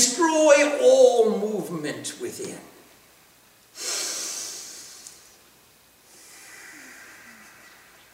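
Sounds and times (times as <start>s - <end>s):
speech: 0.2s - 2.8s
forceful yogic bhastrika bellows breathing: 3.8s - 5.3s, 6.0s - 8.1s.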